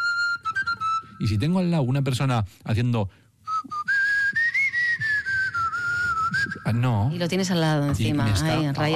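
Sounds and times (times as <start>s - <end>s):
person whistling a clear wavering tone: 0.0s - 1.2s, 3.4s - 6.8s
speech: 1.2s - 3.8s, 6.7s - 8.9s.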